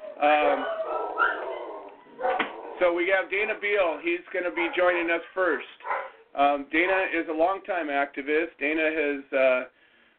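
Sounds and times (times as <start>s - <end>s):
dogs howling and whining: 0.0s - 3.0s, 4.3s - 6.3s
speech: 0.2s - 0.8s, 2.8s - 9.8s.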